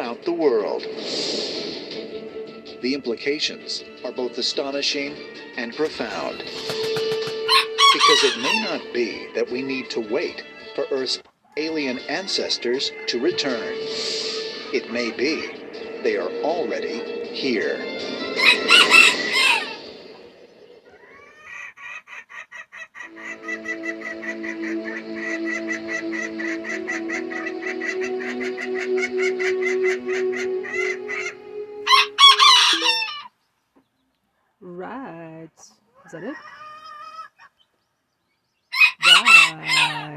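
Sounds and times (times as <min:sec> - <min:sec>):
speech: 0:00.2 - 0:01.8, 0:02.8 - 0:07.0, 0:07.9 - 0:19.2
rooster crowing: 0:06.8 - 0:08.9, 0:18.2 - 0:19.8, 0:23.1 - 0:33.3, 0:38.7 - 0:40.1.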